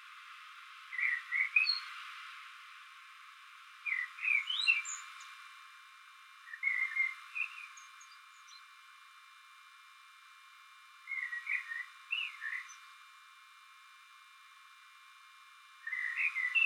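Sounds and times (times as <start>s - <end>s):
common blackbird Turdus merula whistled song phrases: 0.9s - 1.9s, 3.8s - 5.1s, 6.4s - 8.6s, 11.1s - 12.8s, 15.8s - 16.6s.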